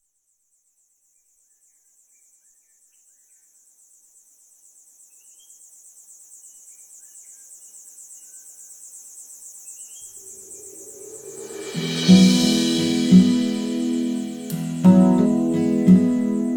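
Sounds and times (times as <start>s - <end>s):
cicada call: 10.0s - 14.8s
burst of broad noise: 10.4s - 16.5s.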